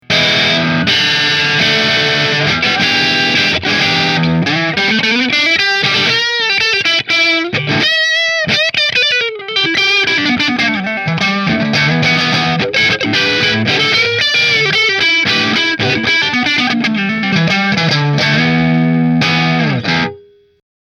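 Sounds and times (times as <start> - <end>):
figured maple single cutaway electric guitar through an amplifier: 0.0 - 20.6.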